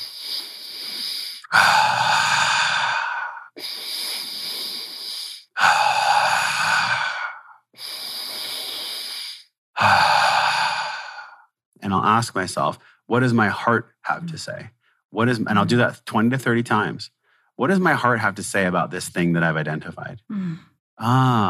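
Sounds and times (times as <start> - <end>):
person inhaling through nose in circular breathing: 0.0 - 1.7, 2.5 - 11.4
speech: 12.2 - 21.4.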